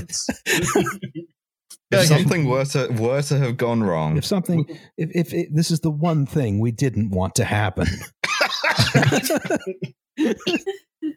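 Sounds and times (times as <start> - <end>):
speech: 0.0 - 1.2, 1.9 - 11.1
laughter: 0.3 - 1.3, 7.8 - 11.1
person coughing after getting soy sauce in the throat: 7.8 - 11.1.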